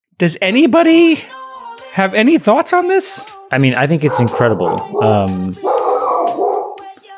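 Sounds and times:
speech: 0.2s - 1.4s, 2.0s - 5.7s
dog howling and yelping: 4.0s - 6.9s.

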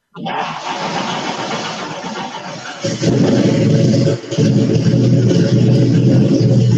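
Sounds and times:
laughter: 0.2s - 4.3s
stock car unmuffled engine starting and revving: 0.3s - 6.7s.

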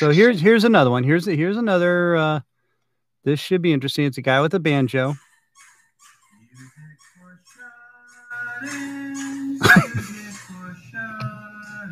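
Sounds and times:
speech: 0.0s - 2.5s, 3.2s - 5.2s
dog barking: 5.1s - 8.6s
laughter: 6.1s - 10.8s.

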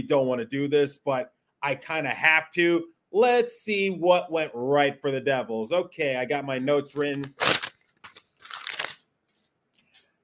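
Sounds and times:
speech: 0.0s - 7.6s
paper being ripped in half: 7.2s - 9.0s
faint paper rustles: 7.2s - 9.5s.

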